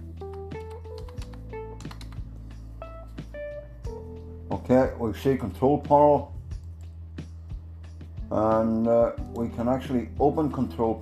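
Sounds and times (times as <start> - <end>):
typing on a computer keyboard: 0.2 - 2.3
speech: 4.5 - 6.4, 8.3 - 11.0.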